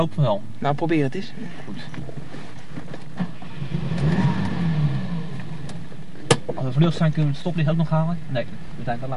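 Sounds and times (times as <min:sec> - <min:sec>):
speech: 0:00.0 - 0:02.5, 0:06.6 - 0:09.1
car engine revving and pulling away from the roadside: 0:03.2 - 0:07.6.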